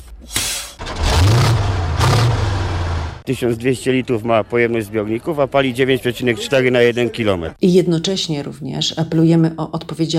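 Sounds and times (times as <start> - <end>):
eight-cylinder diesel engine of a military vehicle revving: 0.8 - 5.6
speech: 3.2 - 10.1.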